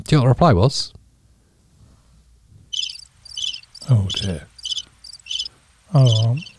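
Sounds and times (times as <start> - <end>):
speech: 0.0 - 1.0, 3.9 - 4.5, 5.9 - 6.5
low hum: 0.0 - 6.5
crickets chirping: 2.6 - 6.5.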